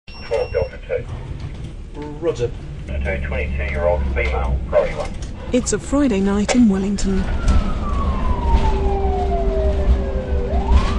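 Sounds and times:
low rumbling early evening traffic noise: 0.1s - 10.9s
ambulance engine hum: 0.7s - 10.9s
speech: 2.2s - 7.7s
ambulance siren wailing in early evening traffic: 7.2s - 10.9s.

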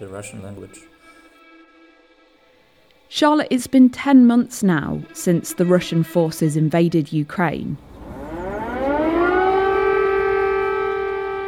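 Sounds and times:
speech: 0.0s - 1.2s, 3.1s - 7.9s
air raid siren wailing in Kyiv, Ukraine: 4.6s - 11.4s.

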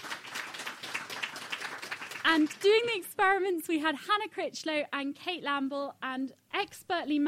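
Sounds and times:
studio audience applause: 0.0s - 2.9s
speech: 2.3s - 7.2s.

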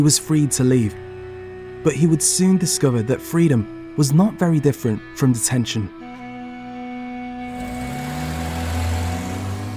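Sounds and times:
speech: 0.0s - 1.0s, 1.8s - 6.1s
car engine pulling out of palace gates in Mecca: 7.4s - 9.7s.

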